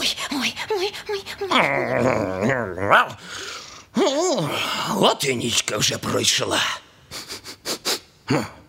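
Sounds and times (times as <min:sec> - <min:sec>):
speech: 0:00.0 - 0:03.4, 0:04.0 - 0:06.8, 0:08.3 - 0:08.6
person imitating a dog with a growl and whine: 0:01.3 - 0:03.2, 0:04.0 - 0:04.6.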